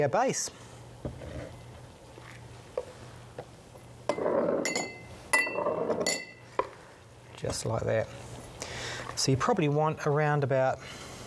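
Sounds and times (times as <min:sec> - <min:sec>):
speech: 0:00.0 - 0:01.2, 0:07.4 - 0:08.2, 0:09.2 - 0:11.1
faint steady hum: 0:00.0 - 0:11.2
spoon tapping against glassware: 0:04.6 - 0:06.4.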